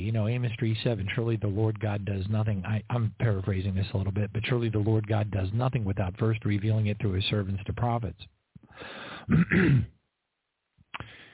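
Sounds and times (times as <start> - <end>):
speech: 0.1 - 10.0
man clearing his throat: 9.2 - 10.0.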